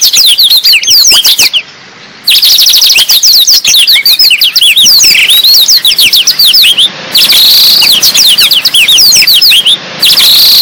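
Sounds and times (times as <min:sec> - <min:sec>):
Black-throated Canary singing rapid whistled slurs and trills: 0:00.0 - 0:10.6.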